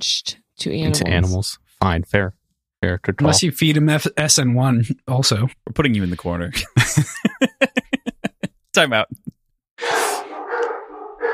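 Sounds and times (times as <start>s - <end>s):
speech: 0.0s - 7.8s, 8.8s - 10.1s
laughter: 6.5s - 8.5s
dogs barking: 9.8s - 11.3s.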